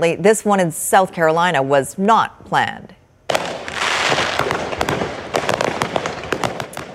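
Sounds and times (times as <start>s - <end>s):
speech: 0.0s - 3.0s
fireworks crackling and popping in a container fire: 3.3s - 6.9s.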